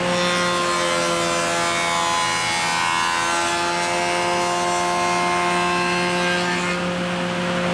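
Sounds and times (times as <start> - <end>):
sawmill ambience: 0.0 - 7.7.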